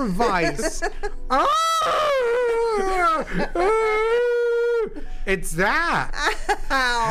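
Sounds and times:
speech: 0.0s - 4.3s, 4.9s - 7.0s
laughter: 0.0s - 5.0s
person howling imitating an animal: 1.3s - 5.0s.

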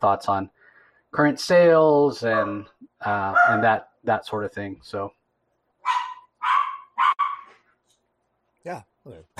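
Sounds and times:
speech: 0.0s - 5.2s, 8.6s - 9.3s
dog barking: 2.3s - 2.7s, 3.3s - 3.7s, 5.8s - 7.6s.

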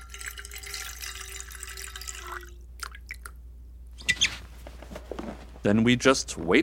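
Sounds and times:
water pouring: 0.0s - 3.4s
speech: 5.6s - 6.6s.

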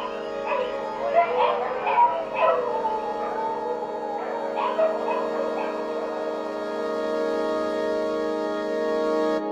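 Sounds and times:
dogs barking and yipping: 0.0s - 6.8s
steady droning hum: 0.0s - 9.4s.

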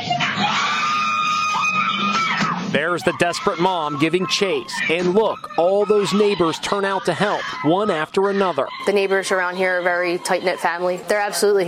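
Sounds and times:
person screaming during a carjacking: 0.3s - 8.9s
speech: 2.7s - 11.6s.

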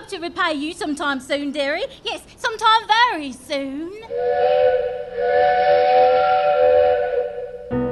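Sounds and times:
speech: 0.1s - 6.7s
steam train whistle blowing as train departs: 4.1s - 7.8s.

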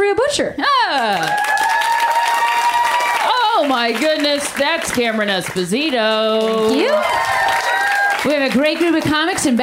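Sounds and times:
speech: 0.3s - 1.6s, 3.7s - 7.4s, 8.2s - 9.6s
live comedy show audience cheering: 1.0s - 4.9s, 6.4s - 9.0s
live comedy show audience applauding: 1.0s - 9.6s
high shrill scream from comedy show audience: 1.3s - 3.3s, 6.8s - 8.2s.

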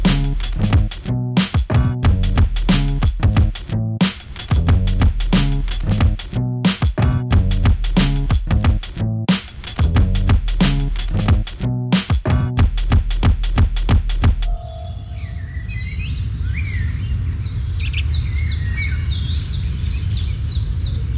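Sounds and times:
rhythmic pulsing beats: 0.0s - 15.0s
birds singing with bright repeated chirping phrases: 14.5s - 21.1s.

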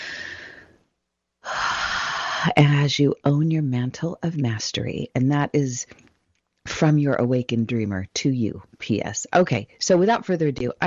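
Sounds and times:
big deep breath: 0.0s - 0.8s, 1.4s - 2.5s
speech: 2.4s - 6.1s, 6.7s - 10.8s.

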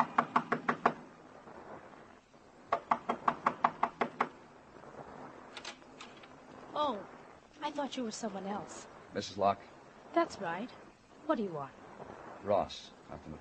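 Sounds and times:
sharp rapping on a door: 0.0s - 1.0s, 2.7s - 4.3s
faint hiss: 0.0s - 13.4s
speech: 7.7s - 11.8s, 12.4s - 13.4s.

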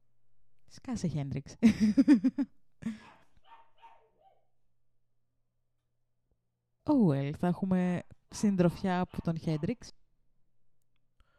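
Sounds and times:
speech: 0.8s - 3.1s, 6.9s - 10.0s
laughter: 1.6s - 3.1s
dog barking: 3.0s - 4.5s, 8.9s - 9.9s.

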